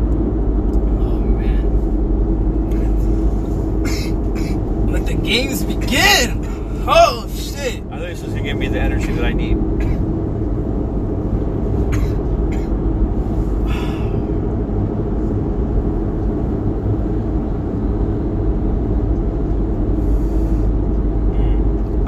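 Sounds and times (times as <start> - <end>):
road noise inside a car moving in traffic: 0.0 - 22.0
speech: 5.3 - 10.0.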